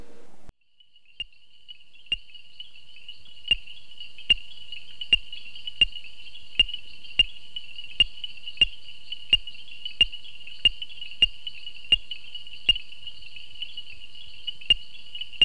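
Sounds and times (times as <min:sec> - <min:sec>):
high ringing hum: 0:00.0 - 0:00.5
common reed frog Hyperolius viridiflavus ticking calls: 0:00.7 - 0:15.4.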